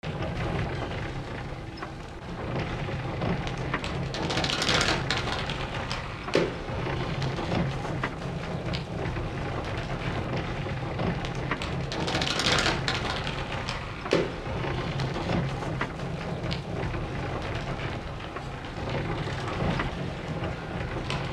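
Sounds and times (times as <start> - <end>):
rustic windmill creaking: 0.0 - 21.3.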